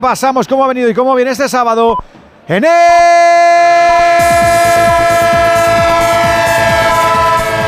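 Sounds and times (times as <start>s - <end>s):
speech: 0.0s - 3.3s
train horn sounding a multi-tone chord: 3.9s - 7.6s.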